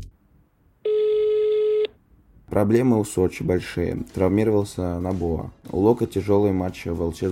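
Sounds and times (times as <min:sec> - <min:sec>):
telephone ringing for an incoming call: 0:00.8 - 0:01.9
speech: 0:02.6 - 0:07.3.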